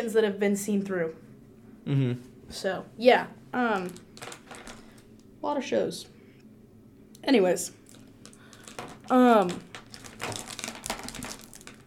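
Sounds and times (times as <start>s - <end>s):
speech: 0.0s - 4.3s, 5.4s - 6.1s, 7.2s - 7.8s, 9.1s - 9.7s
pens being fiddled with, clicking and rattling: 3.8s - 5.0s, 7.8s - 11.8s.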